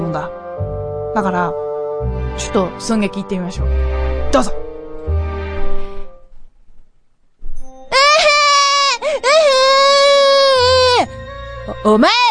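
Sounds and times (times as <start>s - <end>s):
speech: 0.1s - 5.2s, 11.8s - 12.2s
voice acting out a child's crying and wailing sob in a comedy skit: 7.9s - 11.1s.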